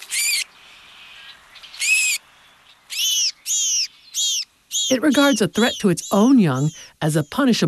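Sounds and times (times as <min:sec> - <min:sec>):
house finch giving high buzzy calls at its nest: 0:00.1 - 0:00.5, 0:01.6 - 0:02.2, 0:02.9 - 0:07.6
speech: 0:04.9 - 0:07.6.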